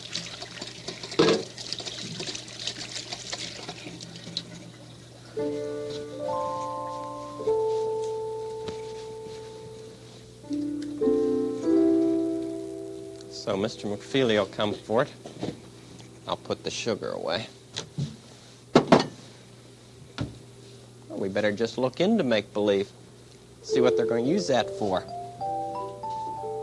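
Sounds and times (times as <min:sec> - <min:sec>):
sticky fingers washed with soap and water: 0:00.0 - 0:04.8
water running steadily from a tap: 0:00.0 - 0:05.1
soft sustained musical tones: 0:05.4 - 0:16.7, 0:23.6 - 0:26.6
speech: 0:13.5 - 0:15.6, 0:16.6 - 0:17.6, 0:21.3 - 0:23.0, 0:23.7 - 0:25.1.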